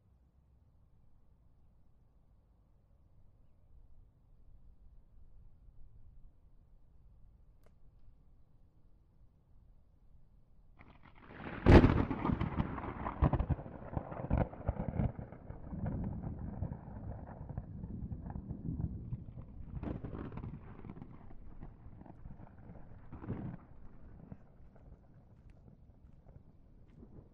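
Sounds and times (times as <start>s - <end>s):
sharp thunder crack: 11.0s - 22.1s
rolling thunder: 11.0s - 25.8s
light to heavy rainstorm: 11.2s - 14.5s.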